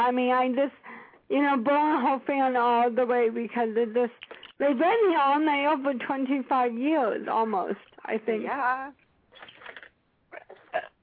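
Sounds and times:
speech: 0.1 - 9.0
person burping: 10.3 - 11.0.

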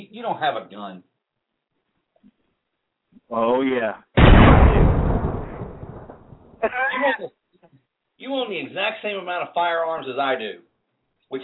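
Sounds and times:
speech: 0.1 - 1.1, 3.2 - 5.0, 6.6 - 7.4, 8.2 - 10.7
explosion sound effect boom: 4.2 - 6.6.

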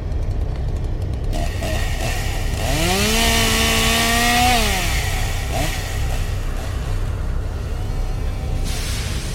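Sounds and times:
chainsaw revving and idling: 0.1 - 9.3.

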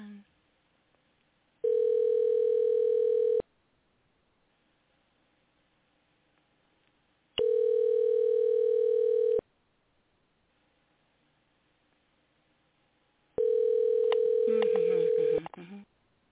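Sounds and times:
ringing tone of an outgoing telephone call: 1.6 - 3.4, 7.4 - 9.4, 13.4 - 15.4.

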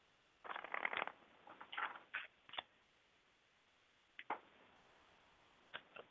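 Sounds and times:
cards being shuffled for a reading: 0.5 - 2.7.

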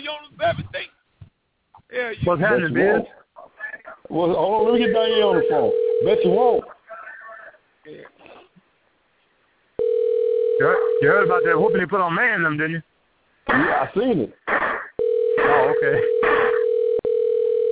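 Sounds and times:
speech: 2.1 - 3.2, 4.1 - 6.7, 10.6 - 12.9, 13.5 - 14.4, 15.8 - 16.5
telephone dial tone: 5.4 - 6.2, 9.8 - 11.6, 15.0 - 17.7.

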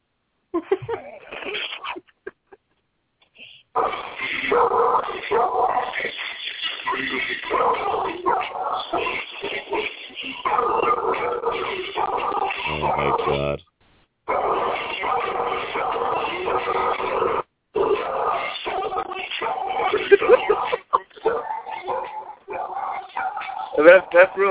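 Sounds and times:
laughter: 0.6 - 2.8, 19.7 - 21.3
recorded song built from dog barks and howls: 3.8 - 13.5, 14.3 - 24.5.

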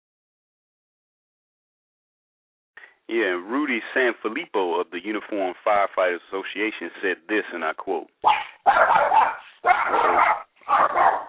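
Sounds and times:
speech: 3.1 - 11.2
dog barking: 8.2 - 11.2.

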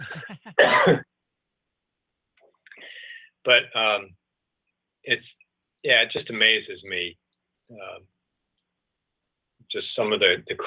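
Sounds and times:
throat clearing: 0.0 - 1.0
harsh cough: 0.0 - 1.1
speech: 0.9 - 1.1, 3.4 - 4.2, 5.0 - 8.1, 9.7 - 10.6.

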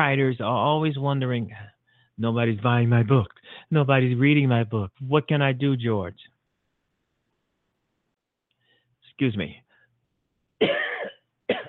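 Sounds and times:
speech: 0.0 - 6.3, 9.2 - 9.6
loud raspy coughs: 10.6 - 11.6.

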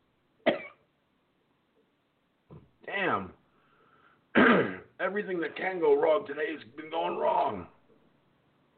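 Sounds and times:
harsh cough from an irritated throat: 0.4 - 0.9, 4.3 - 4.9
speech: 3.0 - 3.4, 5.1 - 7.8.

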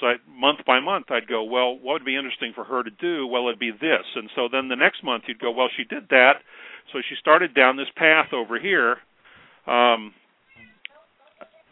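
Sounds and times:
speech: 0.8 - 10.2
cat meowing loudly: 10.5 - 11.0.

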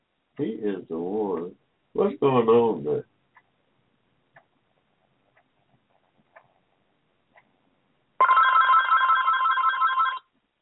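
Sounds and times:
speech: 0.4 - 3.1
telephone ringing in a continuous trill: 8.2 - 10.3.

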